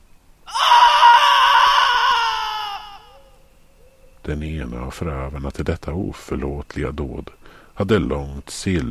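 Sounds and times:
woman screaming in grief and pain: 0:00.5 - 0:03.3
speech: 0:04.3 - 0:08.8.

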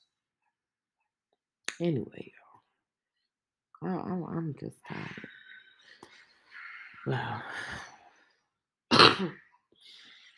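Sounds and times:
speech: 0:01.8 - 0:02.4, 0:03.8 - 0:05.2, 0:07.0 - 0:07.9, 0:09.2 - 0:09.4
person coughing with a rough throat-clearing rasp: 0:08.9 - 0:09.4.

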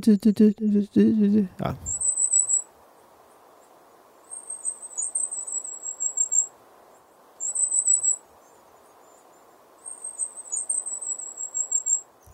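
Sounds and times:
speech: 0:00.0 - 0:01.9
low rush: 0:00.0 - 0:12.3
thin high-pitched whistling calls of small birds in the trees: 0:01.9 - 0:02.7, 0:04.2 - 0:06.5, 0:07.4 - 0:12.3.

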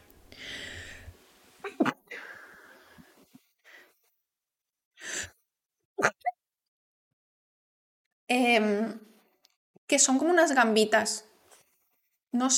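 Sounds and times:
sneeze: 0:01.6 - 0:02.0
speech: 0:09.9 - 0:11.3, 0:12.4 - 0:12.5.

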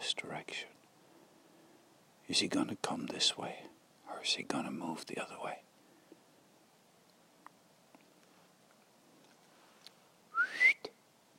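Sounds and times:
speech: 0:00.1 - 0:00.8, 0:02.3 - 0:05.6
faint scattered clicks outdoors: 0:00.7 - 0:01.0, 0:07.0 - 0:10.0
person whistling to call a dog: 0:10.4 - 0:10.9.

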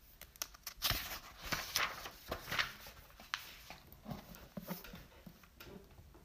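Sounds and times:
book page turning: 0:00.1 - 0:05.0.

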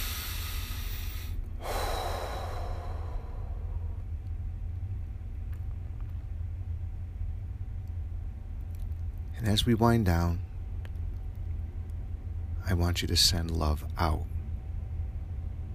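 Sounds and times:
deep breath taken during a guided meditation: 0:00.0 - 0:04.1
low rumbling background: 0:00.0 - 0:15.7
speech: 0:09.4 - 0:10.5, 0:12.8 - 0:14.4.

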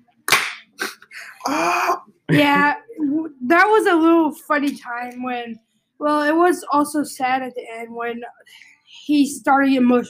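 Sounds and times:
slap sound effect: 0:00.3 - 0:00.8
speech: 0:01.5 - 0:02.8, 0:03.4 - 0:10.0.

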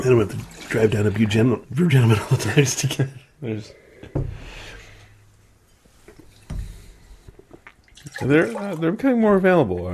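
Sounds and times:
water sloshing and swirling inside a glass being rinsed: 0:00.0 - 0:02.6, 0:06.2 - 0:09.9
speech: 0:00.0 - 0:04.6, 0:08.1 - 0:09.9.

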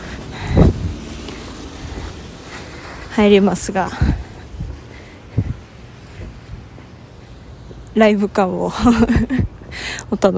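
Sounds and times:
car passing by on the street with low rumble: 0:00.0 - 0:06.6
steady outdoor wind noise: 0:00.0 - 0:07.2, 0:08.7 - 0:10.1
speech: 0:03.2 - 0:04.2, 0:08.0 - 0:10.3.

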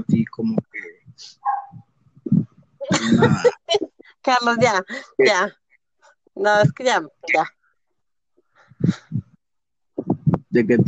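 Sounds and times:
speech: 0:00.0 - 0:01.4, 0:03.0 - 0:05.6, 0:06.4 - 0:07.6, 0:08.8 - 0:09.0, 0:10.6 - 0:10.8
small dog barking in short sharp yaps: 0:01.4 - 0:01.8
laughter: 0:02.8 - 0:04.0.

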